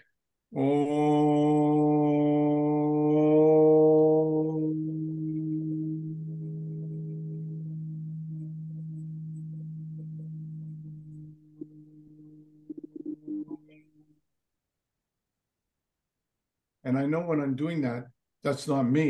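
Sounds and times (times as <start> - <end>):
speech: 0.5 - 1.0, 17.3 - 19.0
single voice deep sustained humming chant after Om mantra: 0.5 - 13.6.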